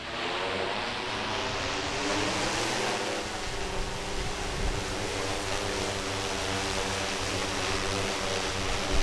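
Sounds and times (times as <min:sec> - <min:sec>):
small camera drone propellers buzzing in flight: 0:00.0 - 0:09.0.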